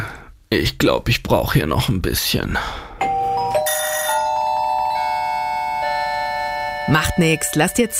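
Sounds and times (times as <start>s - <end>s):
speech: 0.5s - 2.9s, 6.9s - 7.9s
doorbell ding-dong chime: 3.0s - 7.9s.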